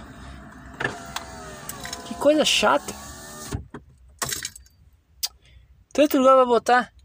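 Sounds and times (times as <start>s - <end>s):
car power window motor whirring while closing: 0.0s - 3.7s
speech: 2.2s - 3.0s, 6.0s - 7.0s.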